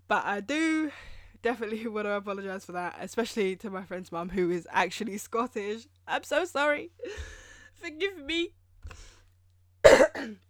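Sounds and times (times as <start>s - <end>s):
speech: 0.1s - 9.1s, 9.9s - 10.4s
person coughing harshly: 9.9s - 10.4s.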